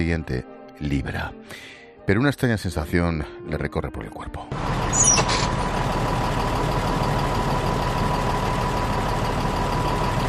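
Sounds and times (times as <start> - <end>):
speech: 0.0 - 5.3
bus engine idling in Tunisia on a February morning: 4.5 - 10.2.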